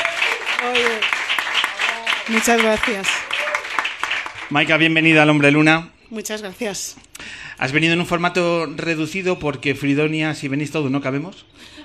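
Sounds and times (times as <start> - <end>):
audience applauding: 0.0 - 5.0
speech: 2.3 - 3.3, 4.5 - 11.8.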